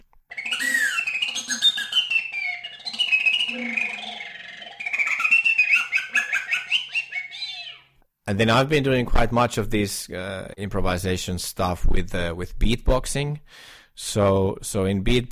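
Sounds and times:
recorder with a nearly closed window squeaking and chirping: 0.0s - 8.0s
speech: 8.3s - 15.2s.

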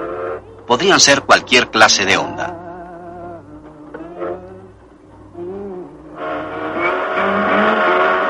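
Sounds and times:
speech: 0.7s - 2.6s
car passing by with Doppler pitch shift: 6.2s - 8.2s.

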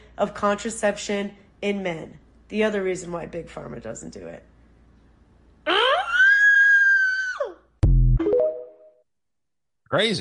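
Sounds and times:
speech: 0.2s - 4.5s, 9.9s - 10.2s
woman screaming high-pitched: 5.6s - 7.7s.

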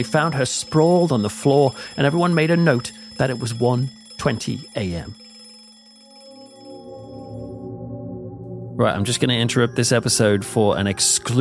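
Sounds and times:
speech: 0.0s - 5.2s, 8.8s - 11.4s
electric bell ringing: 0.0s - 11.4s.

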